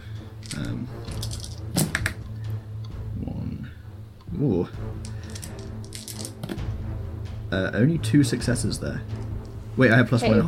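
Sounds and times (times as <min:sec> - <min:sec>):
handful of dice clattering onto a tabletop: 0:00.4 - 0:02.2, 0:05.0 - 0:06.6
speech: 0:04.4 - 0:05.1, 0:07.5 - 0:09.2, 0:09.8 - 0:10.4.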